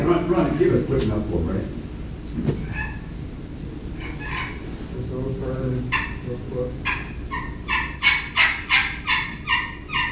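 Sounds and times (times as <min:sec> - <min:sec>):
speech: 0:00.1 - 0:02.8, 0:05.4 - 0:07.1
soft turkey putts and purrs on a slate call: 0:04.0 - 0:04.7, 0:05.9 - 0:10.0.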